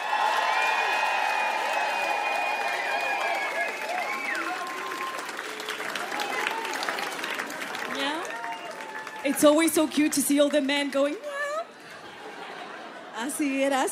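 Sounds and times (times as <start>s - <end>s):
crowd cheering and applauding for a DJ at a concert: 0.0s - 13.1s
whoops whistles and shouts from a concert crowd: 2.6s - 5.2s
speech: 9.3s - 11.3s, 13.2s - 13.8s
laughter: 11.4s - 13.8s.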